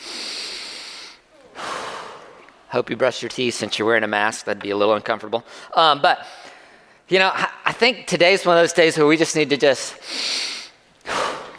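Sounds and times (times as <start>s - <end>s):
deep breaths: 0.0s - 2.5s, 5.4s - 7.1s, 10.0s - 11.5s
speech: 2.7s - 6.4s, 7.1s - 10.5s.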